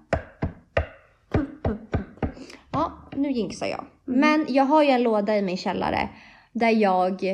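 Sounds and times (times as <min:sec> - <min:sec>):
hard knocks on a wooden surface: 0:00.0 - 0:03.8
speech: 0:02.8 - 0:07.3.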